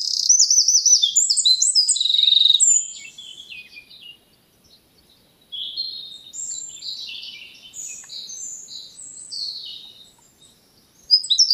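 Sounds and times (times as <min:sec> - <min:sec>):
Eurasian wren (Troglodytes troglodytes) song: 0:00.0 - 0:11.5.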